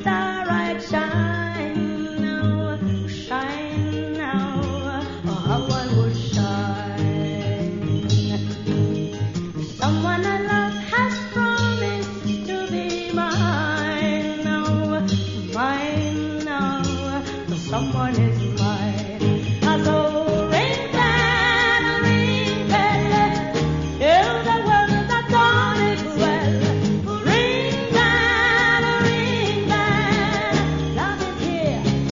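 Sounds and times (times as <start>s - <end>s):
bell ringing: 0.3s - 32.0s.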